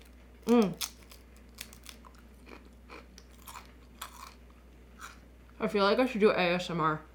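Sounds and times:
crunchy chips being chewed: 0:00.0 - 0:05.2
speech: 0:05.6 - 0:07.1.

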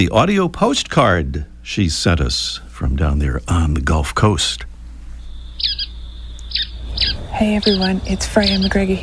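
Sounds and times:
speech: 0:00.0 - 0:04.7, 0:07.4 - 0:09.0
low hum: 0:00.0 - 0:09.0
steady high tonal drone: 0:00.0 - 0:09.0
bright squeaky bird calls: 0:05.1 - 0:09.0.

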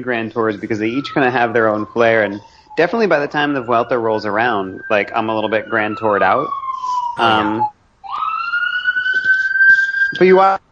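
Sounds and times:
faint talk: 0:00.0 - 0:06.5, 0:07.2 - 0:07.7
burst of voice: 0:00.0 - 0:07.7, 0:09.2 - 0:10.7
speech: 0:00.0 - 0:07.7, 0:10.2 - 0:10.6
shrieking siren of passing emergency vehicle: 0:00.0 - 0:10.7.

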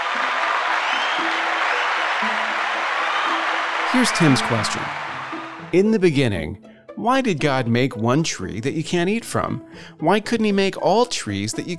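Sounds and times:
audience applause: 0:00.0 - 0:05.8
speech: 0:03.9 - 0:05.0, 0:05.7 - 0:11.7.

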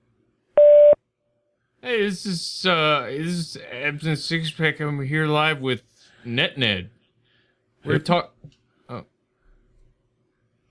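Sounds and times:
voicemail electronic beep tone: 0:00.6 - 0:01.0
speech: 0:01.8 - 0:07.0, 0:07.8 - 0:09.1.

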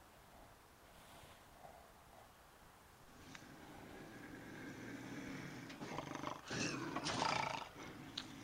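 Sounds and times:
hissy outdoor background: 0:00.0 - 0:08.4
bobcat growling: 0:03.2 - 0:08.4.

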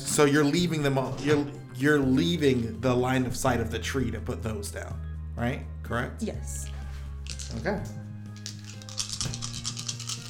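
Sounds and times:
speech: 0:00.2 - 0:06.7, 0:07.5 - 0:08.0
handful of dice clattering across a hard surface: 0:07.2 - 0:07.6, 0:08.4 - 0:10.2.

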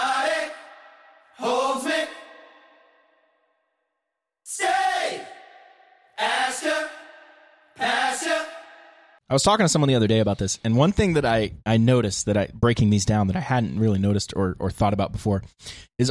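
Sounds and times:
gang vocals, group shouting in unison: 0:00.0 - 0:02.5, 0:04.5 - 0:09.1
speech: 0:09.3 - 0:16.1.

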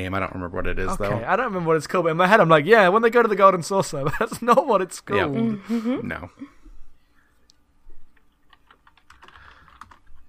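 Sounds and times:
speech: 0:00.0 - 0:06.6
typing on a keyboard with plastic keys: 0:08.2 - 0:10.2.

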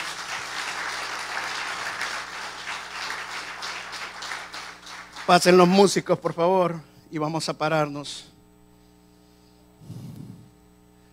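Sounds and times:
crowd applauding in a large room: 0:00.0 - 0:06.0
speech: 0:05.3 - 0:08.3.

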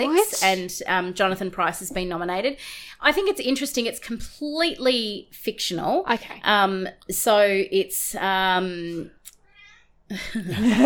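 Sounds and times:
speech: 0:00.0 - 0:09.2, 0:10.1 - 0:10.8
cat meowing: 0:09.4 - 0:10.0.

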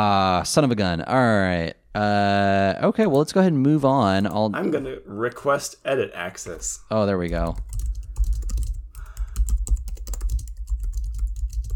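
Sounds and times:
speech: 0:00.0 - 0:07.8
rapid typing on a computer keyboard: 0:07.3 - 0:11.7.

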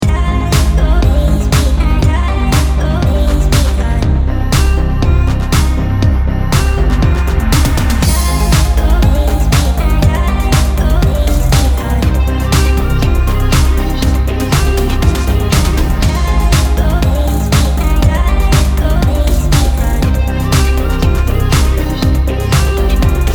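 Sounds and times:
looped vocal: 0:00.0 - 0:23.3.

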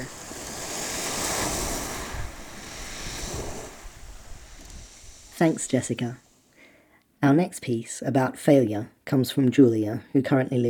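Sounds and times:
waves washing over a shingle beach: 0:00.0 - 0:05.9
wind buffeting: 0:00.0 - 0:06.1
speech: 0:05.4 - 0:06.2, 0:07.2 - 0:10.6.

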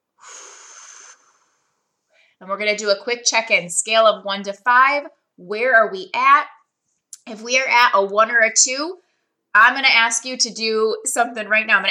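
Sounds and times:
deep breath during a guided breathing exercise: 0:00.2 - 0:02.4
speech: 0:02.4 - 0:06.6, 0:07.3 - 0:11.8.

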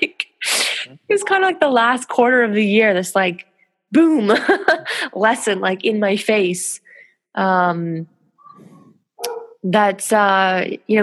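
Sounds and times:
dogs barking loudly: 0:01.1 - 0:01.7, 0:08.4 - 0:09.6
speech: 0:01.1 - 0:08.1, 0:09.6 - 0:11.0
dog yelping: 0:08.4 - 0:09.6.

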